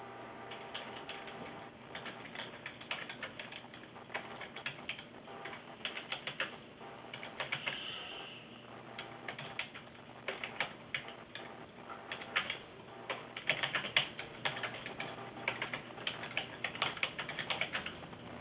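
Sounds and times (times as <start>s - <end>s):
typing on a computer keyboard: 0.5s - 7.9s, 9.0s - 11.5s, 12.1s - 18.1s.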